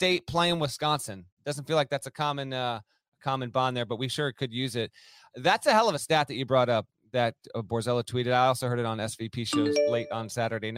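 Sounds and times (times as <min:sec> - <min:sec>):
speech: 0:00.0 - 0:10.7
computer alert chime: 0:09.6 - 0:10.3.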